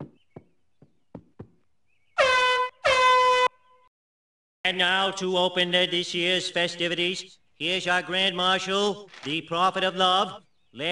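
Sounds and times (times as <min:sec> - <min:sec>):
knocks or taps: 0:00.0 - 0:01.6
air horn blasts: 0:02.2 - 0:03.9
speech: 0:04.6 - 0:10.9.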